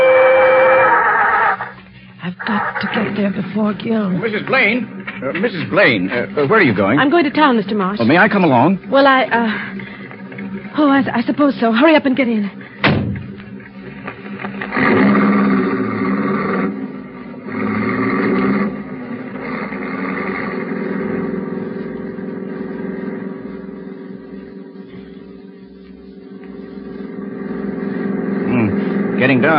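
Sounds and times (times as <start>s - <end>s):
car engine droning while driven fast: 0.0s - 29.5s
speech: 2.5s - 10.0s, 10.8s - 12.6s.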